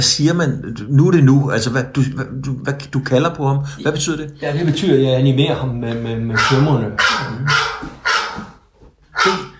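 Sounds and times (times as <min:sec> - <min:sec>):
speech: 0:00.0 - 0:07.6, 0:09.2 - 0:09.5
phone ringtone of a barking dog: 0:06.4 - 0:08.4, 0:09.2 - 0:09.5.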